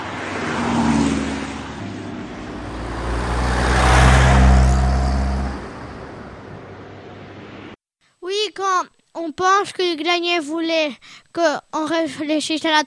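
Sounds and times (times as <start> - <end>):
busy road traffic on the Rambla de Catalunya: 0.0 - 7.8
cars sweeping past: 0.0 - 7.8
speech: 9.4 - 12.8.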